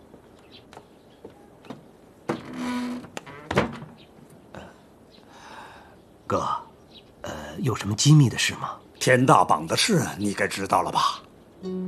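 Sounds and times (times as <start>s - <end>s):
door closing with a scraping slide, knock and thud: 1.7s - 4.0s
speech: 6.3s - 6.6s, 7.6s - 11.8s.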